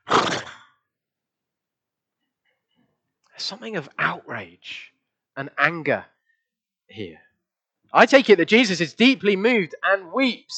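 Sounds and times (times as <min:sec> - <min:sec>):
human voice imitating a horse's snort: 0:00.0 - 0:00.8
speech: 0:03.4 - 0:06.2, 0:06.9 - 0:07.3, 0:07.9 - 0:10.5.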